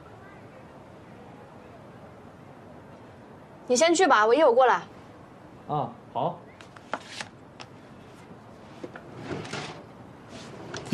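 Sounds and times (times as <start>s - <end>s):
speech: 3.7s - 4.9s, 5.7s - 6.4s
drawer sliding open with sharp clicks: 8.8s - 9.8s.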